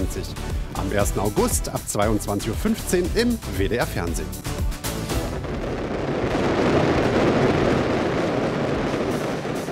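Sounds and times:
speech: 0.0s - 4.8s
fireworks explosions with booms and crackles: 5.1s - 9.7s.

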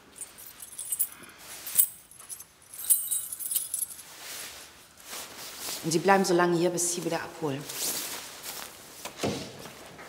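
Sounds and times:
keys jangling and clinking: 0.0s - 4.2s
rustling handling sounds: 0.0s - 10.0s
speech: 5.8s - 7.9s.

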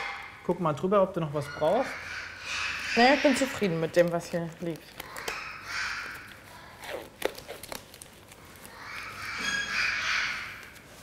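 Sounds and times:
speech: 0.5s - 5.1s
parakeet with injured leg squawking in a veterinary clinic: 1.2s - 7.0s, 8.7s - 10.8s
rustling and clicking handling sounds: 3.6s - 11.0s.

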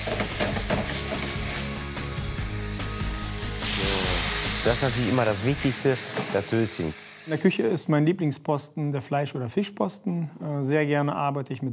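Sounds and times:
hot pan sizzling as white wine is added to deglaze it: 0.0s - 7.9s
speech: 4.6s - 11.7s.

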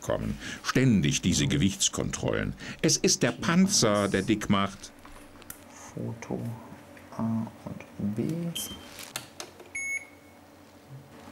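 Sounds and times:
speech: 0.0s - 5.0s, 6.0s - 9.1s
mobile phone short high electronic beep for an incoming call: 9.8s - 10.3s.

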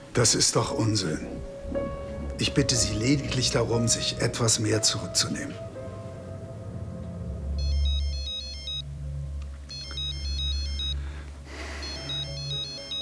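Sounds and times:
low hum: 0.1s - 12.5s
speech: 0.2s - 1.8s, 2.4s - 5.7s
mobile phone electronic ringtone with quick high chirping tones: 7.6s - 8.9s, 9.7s - 11.0s, 11.7s - 13.0s.

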